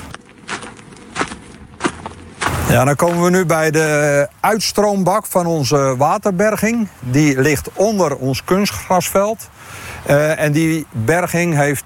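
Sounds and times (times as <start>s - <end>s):
footsteps walking at a sports club: 0.0s - 3.7s
speech: 2.7s - 11.8s.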